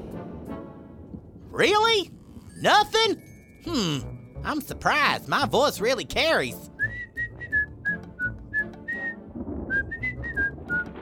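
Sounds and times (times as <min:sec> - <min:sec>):
speech: 0:01.6 - 0:06.7
person whistling a short melody: 0:06.7 - 0:11.0.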